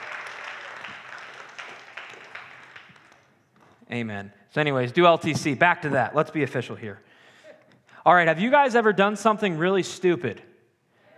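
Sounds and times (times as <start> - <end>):
crowd clapping: 0.0 - 3.6
speech: 3.9 - 7.1, 8.0 - 10.5.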